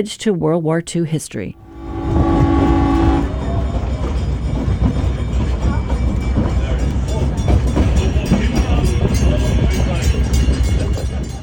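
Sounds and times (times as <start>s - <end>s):
speech: 0.0s - 1.7s
brief horn-like tone: 1.5s - 3.9s
historic train clattering on the rails on the Eva Plain: 2.6s - 11.4s.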